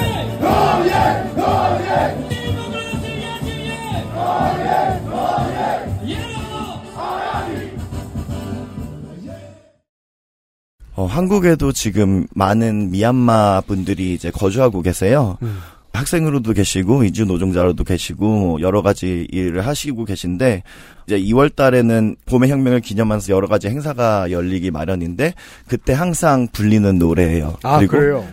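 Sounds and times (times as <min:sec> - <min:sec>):
protest rally crowd chanting slogans in a station square: 0:00.2 - 0:02.3, 0:03.9 - 0:07.8
speech: 0:11.0 - 0:28.3.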